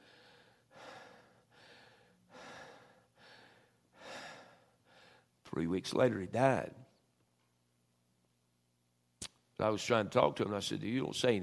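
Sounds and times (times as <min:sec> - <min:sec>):
person imitating labored gasping breathing of a man with lung cancer: 0:00.0 - 0:05.2
speech: 0:05.6 - 0:06.8, 0:09.6 - 0:11.4.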